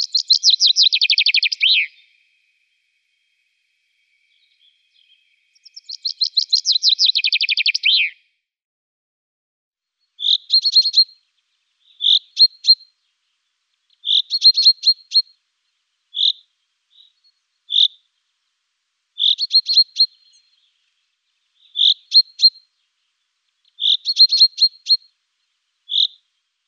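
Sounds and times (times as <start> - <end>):
common chaffinch chirping: 0.0 - 2.4, 4.0 - 8.2, 10.0 - 15.4, 16.1 - 18.1, 19.2 - 26.6.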